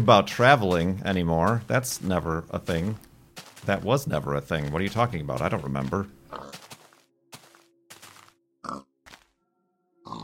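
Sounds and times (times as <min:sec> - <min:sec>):
speech: 0:00.0 - 0:06.6
pig grunting: 0:06.3 - 0:06.6.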